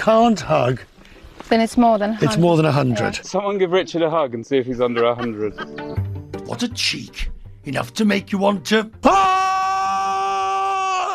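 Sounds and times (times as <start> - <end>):
speech: 0.0 - 9.4
laughter: 4.7 - 6.0
person shouting into the woods: 9.0 - 11.1.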